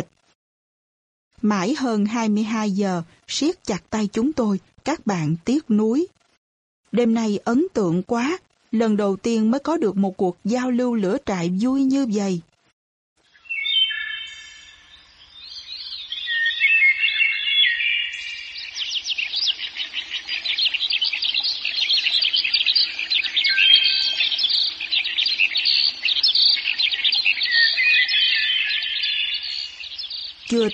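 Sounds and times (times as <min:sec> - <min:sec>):
speech: 0:01.4 - 0:06.2, 0:06.9 - 0:12.5, 0:30.6 - 0:30.7
Chinese hwamei birdsong played from a cassette player in a forest at dawn: 0:16.1 - 0:30.7.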